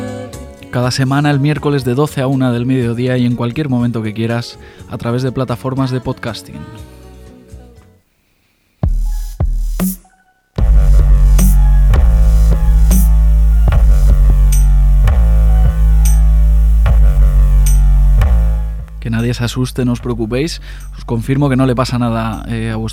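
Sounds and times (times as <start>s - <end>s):
speech: 0.8s - 6.9s, 19.3s - 22.9s
harsh noisy experimental music: 8.9s - 19.3s
regular pulsing hits: 9.8s - 19.0s
heavy low rumble: 10.6s - 22.4s.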